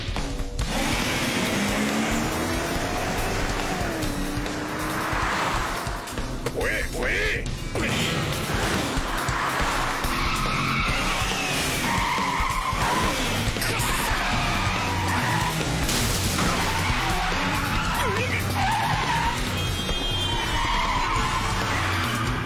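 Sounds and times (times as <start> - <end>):
video game car chase engine roar: 0.5 - 22.4
video game car chase tires screeching: 0.6 - 22.4.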